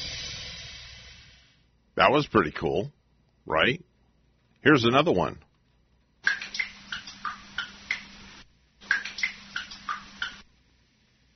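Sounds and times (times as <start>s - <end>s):
speech: 2.1s - 3.9s, 4.6s - 5.5s
water dripping from a faucet played as music by a man: 6.3s - 8.2s, 8.8s - 10.4s.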